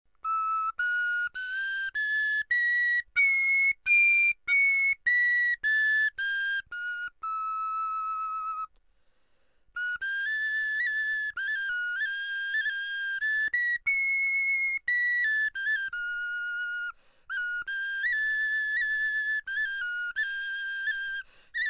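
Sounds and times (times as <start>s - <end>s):
bone flute: 0.2s - 8.7s, 9.7s - 21.6s.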